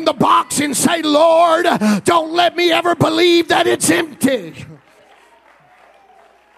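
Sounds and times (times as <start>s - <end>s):
speech: 0.0s - 4.7s
crowd clapping: 2.8s - 6.5s.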